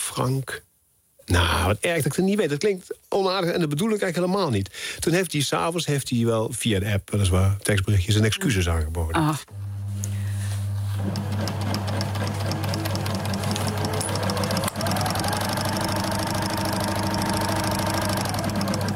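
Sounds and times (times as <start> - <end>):
speech: 0.1 - 0.7, 1.3 - 9.7
sewing machine running: 10.8 - 18.9.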